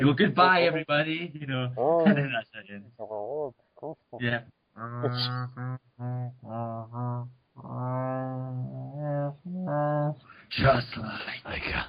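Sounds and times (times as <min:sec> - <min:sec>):
speech: 0:00.0 - 0:11.8
voice making whale-like moaning tones: 0:03.0 - 0:04.1, 0:04.8 - 0:10.3.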